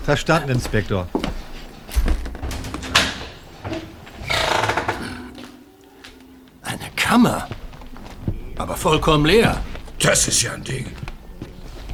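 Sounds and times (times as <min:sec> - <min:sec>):
speech: 0:00.1 - 0:01.3, 0:07.1 - 0:07.6, 0:08.6 - 0:11.0
heavy wooden door being worked open: 0:01.8 - 0:05.5.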